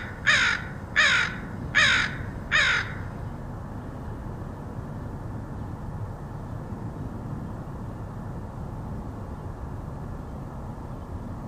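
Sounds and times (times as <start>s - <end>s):
crow giving loud harsh caws in Portland Oregon: 0.0s - 3.1s.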